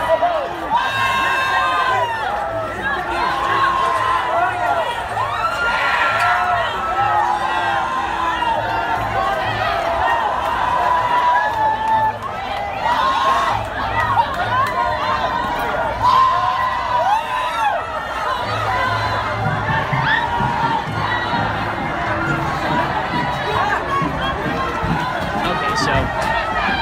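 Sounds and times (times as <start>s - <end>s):
large crowd of protesters shouting and yelling storming barricades at a rally: 0.0s - 26.8s
protesters whooping: 0.7s - 19.1s.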